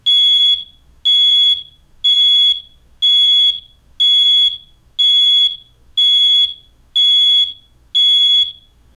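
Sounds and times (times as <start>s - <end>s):
high-pitched beep of a smoke detector: 0.0s - 8.8s.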